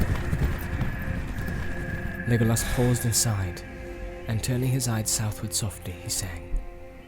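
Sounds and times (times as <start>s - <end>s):
horses galloping hooves: 0.0s - 2.9s
speech: 2.3s - 3.7s, 4.3s - 6.5s.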